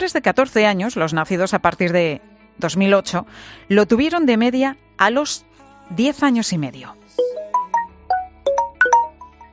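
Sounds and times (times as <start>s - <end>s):
speech: 0.0s - 7.4s
WhatsApp message notification chimes: 7.2s - 9.3s.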